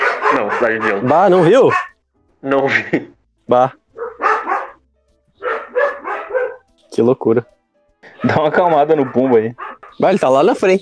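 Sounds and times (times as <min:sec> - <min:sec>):
dog barking: 0:00.0 - 0:02.0, 0:03.9 - 0:04.8, 0:05.4 - 0:10.8
speech: 0:00.3 - 0:03.8, 0:07.0 - 0:10.8.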